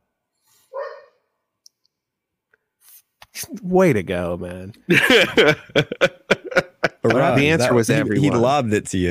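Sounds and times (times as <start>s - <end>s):
dog barking: 0.7s - 1.2s
speech: 3.5s - 6.4s, 7.0s - 9.0s
laughter: 4.9s - 8.7s.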